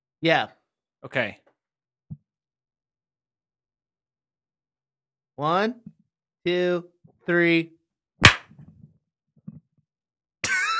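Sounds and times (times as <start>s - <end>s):
speech: 0.2s - 1.4s, 5.4s - 7.8s
sharp loud hand clap for audio sync: 8.2s - 8.5s.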